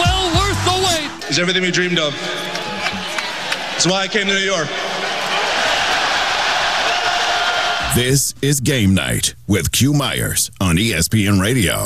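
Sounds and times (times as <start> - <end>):
crowd cheering as basketball team wins championship: 0.0 - 8.2
speech: 1.4 - 2.5, 3.8 - 4.8, 7.9 - 11.8.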